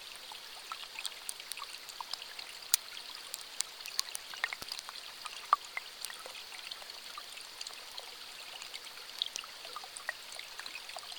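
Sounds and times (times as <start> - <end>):
water trickling beneath the ice of a frozen river: 0.0 - 11.1
small sharp ice clicks, crackles and snaps: 0.6 - 6.5, 9.0 - 10.0.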